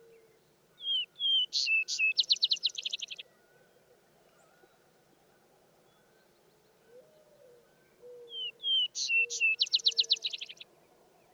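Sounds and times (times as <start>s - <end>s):
Vesper sparrow song with whistles and a rapid rattling trill: 0.8s - 3.2s, 8.3s - 10.6s.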